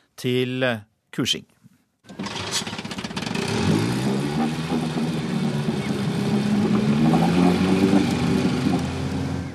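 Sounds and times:
speech: 0.2 - 2.2
small boat motor starting and running: 2.1 - 9.5.

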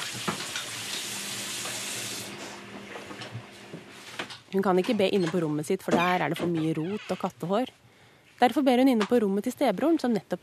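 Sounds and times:
water running from a tap as a girl washes before prayer: 0.0 - 2.4
speech: 4.5 - 10.4.

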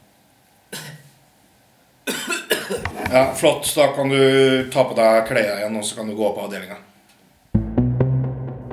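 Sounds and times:
person coughing forcefully: 0.7 - 1.1, 2.1 - 3.2
speech: 3.1 - 6.9.

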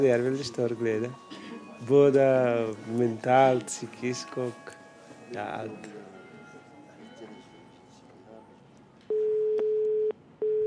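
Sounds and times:
speech: 0.0 - 6.0
electronic telephone ringing tone before call answered: 9.1 - 10.6.

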